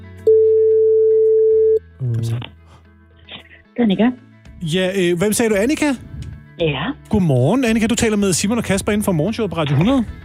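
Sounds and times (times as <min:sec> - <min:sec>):
telephone ringback tone on an outgoing call: 0:00.3 - 0:01.8
speech: 0:03.8 - 0:10.2.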